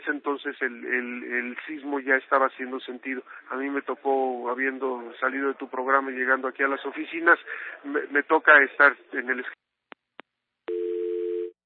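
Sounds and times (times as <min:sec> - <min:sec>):
speech: 0:00.2 - 0:09.6
steady low telephone tone after a dropped call: 0:10.7 - 0:11.6.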